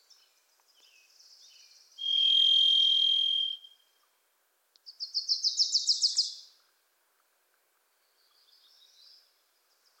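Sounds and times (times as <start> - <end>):
Varied Thrush Ixoreus naevius whistled song in Pacific Northwest forest: 2.0 - 3.7.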